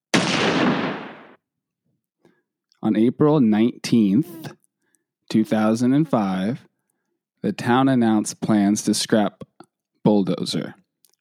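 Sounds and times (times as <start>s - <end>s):
gunshot with echo: 0.1s - 1.4s
speech: 2.8s - 4.6s, 5.3s - 6.7s, 7.4s - 10.8s.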